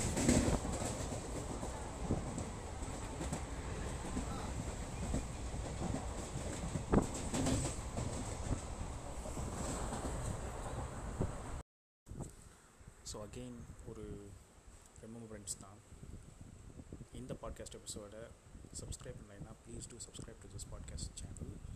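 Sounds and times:
loud rumble of a moving train: 0.0 - 11.6
speech: 13.2 - 14.3, 15.4 - 15.8, 17.3 - 21.6.

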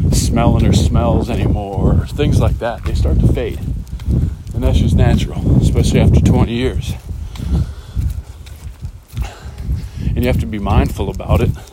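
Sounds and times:
footsteps of someone walking up hills: 0.0 - 11.7
speech: 0.3 - 7.7, 10.2 - 11.7.

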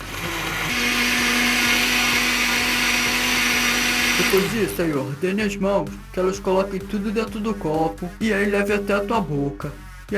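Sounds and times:
blender motor running at high speed: 0.0 - 5.2
speech: 4.2 - 10.1.

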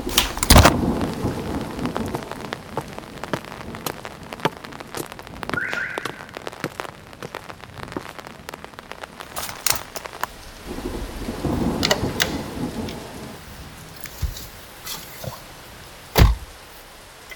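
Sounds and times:
rain pattering: 0.0 - 17.3
brief chirping tone: 5.6 - 6.3.

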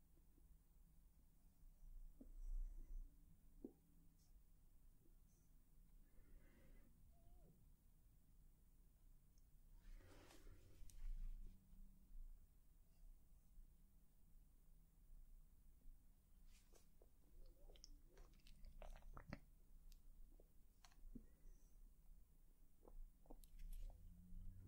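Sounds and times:
faint low hum: 0.0 - 24.6
quiet brushing and touching with soft rustles: 9.8 - 11.4.

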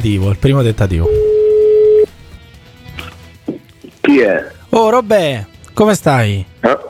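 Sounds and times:
speech: 0.0 - 1.2, 4.1 - 6.8
telephone line hiss: 0.4 - 2.4
telephone ringing tone: 0.7 - 2.4.

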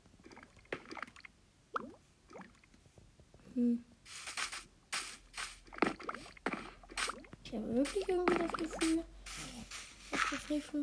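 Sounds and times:
lava dripping at a lava farm in a video game: 0.2 - 2.8, 5.2 - 10.5
speech: 3.6 - 4.3, 7.5 - 9.2, 10.3 - 10.8.

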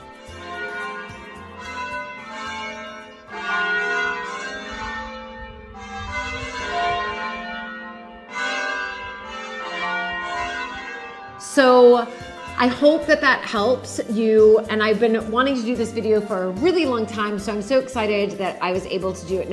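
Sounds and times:
church bells pealing a melody: 0.0 - 19.5
speech: 11.6 - 19.5.

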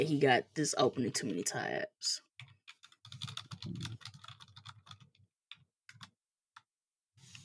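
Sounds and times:
speech: 0.0 - 2.3
typing a message on a computer keyboard: 2.4 - 6.1.

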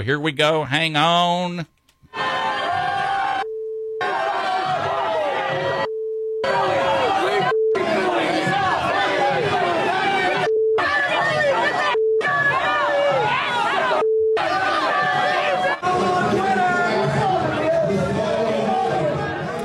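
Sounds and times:
speech: 0.0 - 2.3
crowd of protesters shouting and yelling: 2.1 - 3.4, 4.0 - 19.6
censor beep tones: 3.4 - 4.0, 5.8 - 8.6, 10.2 - 13.0, 13.8 - 14.4.

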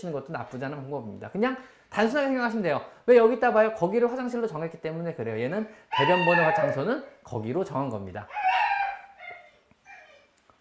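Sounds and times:
speech: 0.0 - 8.4
dog whining and yelping in the studio: 5.9 - 7.2, 8.3 - 10.4.

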